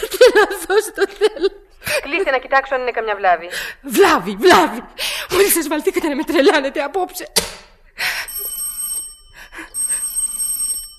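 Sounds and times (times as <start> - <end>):
laughter: 0.0 - 2.2
speech: 0.4 - 7.6
telephone bell ringing: 8.2 - 10.9.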